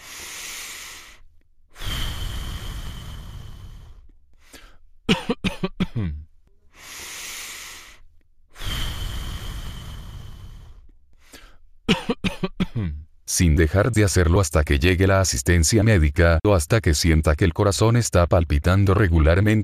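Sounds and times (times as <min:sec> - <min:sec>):
person taking long deep breaths: 0:00.0 - 0:05.0, 0:06.6 - 0:11.8
person coughing in harsh forceful bursts: 0:04.6 - 0:06.2, 0:11.9 - 0:13.0
speech: 0:05.1 - 0:05.6, 0:13.4 - 0:19.6.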